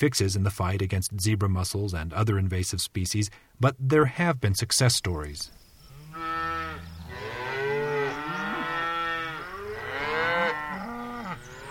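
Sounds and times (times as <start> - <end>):
speech: 0.0 - 5.6
several cows mooing: 5.9 - 11.6.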